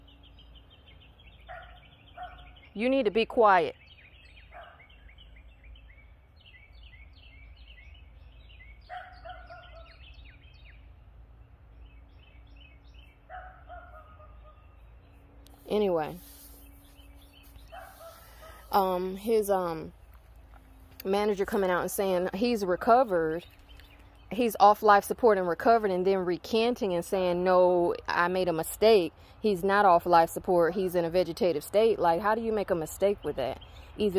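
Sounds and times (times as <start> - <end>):
dog barking: 1.5 - 2.5, 4.5 - 4.9, 8.9 - 10.0, 13.3 - 14.6, 17.7 - 18.7
speech: 2.8 - 3.8, 19.2 - 20.0, 21.0 - 23.6, 24.3 - 34.1.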